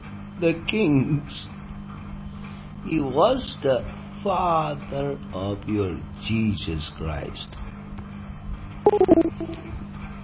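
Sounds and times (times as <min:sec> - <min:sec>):
speech: 0:00.4 - 0:01.5, 0:02.8 - 0:07.6, 0:08.9 - 0:09.8
telephone number dialed with DTMF tones: 0:08.9 - 0:09.6.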